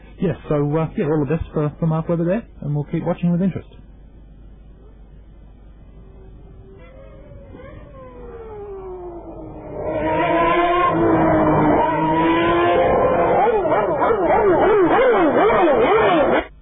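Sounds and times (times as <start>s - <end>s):
speech: 0.2s - 3.8s
Ferrari Formula 1 car engine screaming at high revs: 6.0s - 16.5s.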